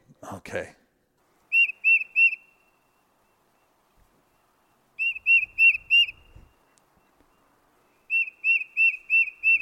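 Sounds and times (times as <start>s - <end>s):
tufted titmouse singing whistled notes: 1.5s - 2.8s, 5.0s - 7.4s, 8.0s - 9.6s.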